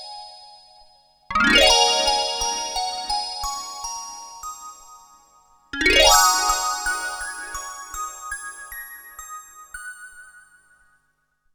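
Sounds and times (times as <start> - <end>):
JX8P synthesizer music box tone: 1.3 - 3.1, 5.8 - 9.1.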